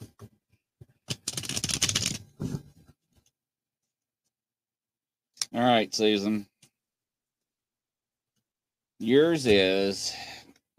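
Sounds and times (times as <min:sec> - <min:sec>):
deck of playing cards riffle shuffling: 0:01.1 - 0:02.6
speech: 0:05.6 - 0:06.5, 0:09.0 - 0:10.7.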